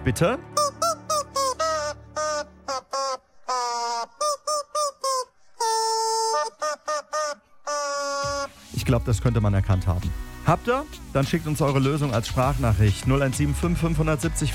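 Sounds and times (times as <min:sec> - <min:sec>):
speech: 0:00.0 - 0:00.7, 0:08.9 - 0:14.5
squeaky rubber chicken dog toy squeaking a tune: 0:00.6 - 0:08.6.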